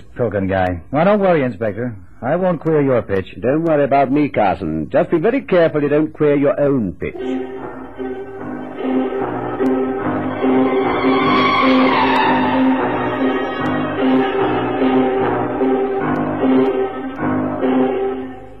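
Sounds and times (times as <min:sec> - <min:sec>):
speech: 0:00.2 - 0:08.2
bus engine droning: 0:07.7 - 0:17.1.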